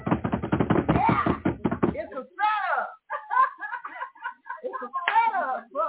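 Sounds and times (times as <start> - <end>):
quick loud drum roll: 0.0 - 2.0
laughter: 3.1 - 5.7.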